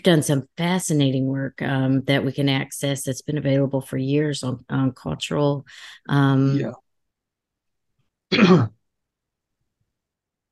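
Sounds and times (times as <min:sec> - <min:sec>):
speech: 0:00.0 - 0:06.8, 0:08.3 - 0:08.8
person clearing throat: 0:08.3 - 0:08.8.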